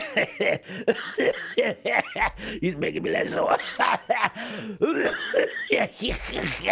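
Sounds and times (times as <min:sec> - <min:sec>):
person coughing: 0:00.0 - 0:02.6, 0:04.8 - 0:06.7
laughter: 0:00.0 - 0:04.4, 0:05.8 - 0:06.7
speech: 0:00.2 - 0:06.7.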